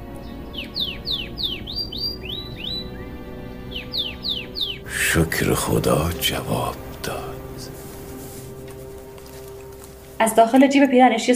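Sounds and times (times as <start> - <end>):
yellow canary chirping: 0.2 - 6.7
speech: 5.1 - 7.2, 10.2 - 11.3.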